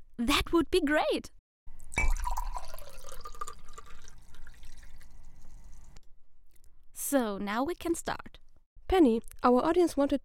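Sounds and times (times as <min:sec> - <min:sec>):
speech: 0:00.2 - 0:01.4, 0:07.1 - 0:10.2
wine gurgling and splashing into a glass: 0:01.9 - 0:06.0
quick glassy clink: 0:02.0 - 0:04.0.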